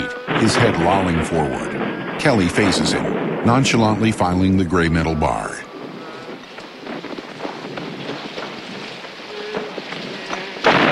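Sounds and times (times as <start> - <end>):
loud rumbling crack of thunder or distant artillery shelling: 0.0 - 10.9
steady rain: 0.0 - 10.9
speech: 0.4 - 5.6.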